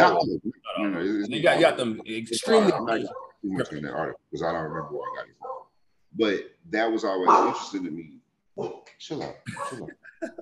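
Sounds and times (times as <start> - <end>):
speech: 0.1 - 5.4, 6.1 - 10.4
dog barking: 2.8 - 3.4, 5.0 - 5.7, 7.3 - 7.7.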